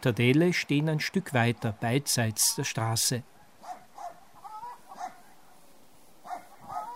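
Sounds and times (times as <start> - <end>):
speech: 0.0 - 3.3
dog barking in a village by a river: 3.6 - 5.3, 6.2 - 6.9.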